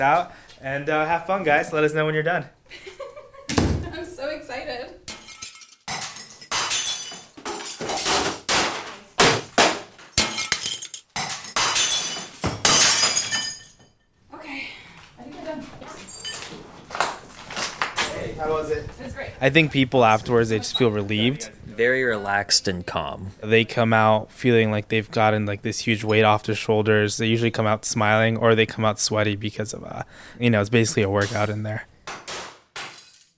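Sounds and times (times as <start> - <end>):
speech: 0.0 - 2.9, 19.4 - 31.9
glass vases and electronics being smashed: 5.1 - 14.0, 32.3 - 33.3
shattering and tinkling glass debris: 5.1 - 14.2, 15.9 - 18.4.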